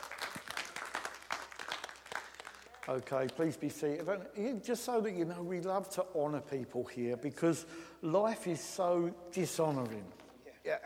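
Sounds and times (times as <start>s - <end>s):
congregation applauding during a church service: 0.0s - 4.1s
speech: 2.9s - 10.8s.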